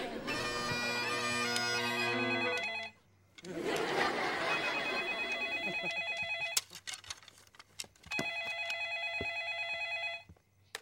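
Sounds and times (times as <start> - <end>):
laughter: 0.0 - 0.5, 3.4 - 6.2
telephone ringing: 1.6 - 3.0, 3.7 - 6.7, 8.1 - 10.3.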